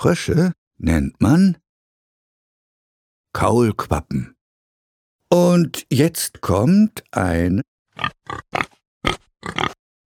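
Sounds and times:
speech: 0.0 - 1.6, 3.4 - 4.4, 5.3 - 9.7
pig grunting: 8.0 - 10.0.

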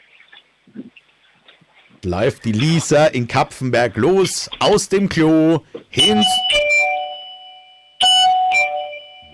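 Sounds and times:
speech: 2.0 - 6.7
loud doorbell chime ringing: 6.0 - 9.3.

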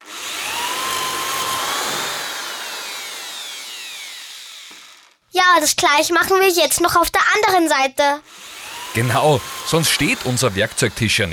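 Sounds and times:
power drill pre-drilling and screwing a wooden board: 0.0 - 5.3, 8.2 - 11.3
speech: 5.5 - 11.3.

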